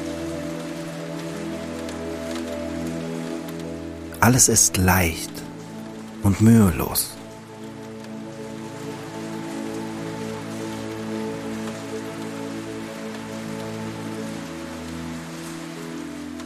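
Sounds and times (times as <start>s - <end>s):
steady rain pattering on a surface: 0.0s - 16.4s
speech: 4.2s - 5.4s, 6.2s - 7.1s.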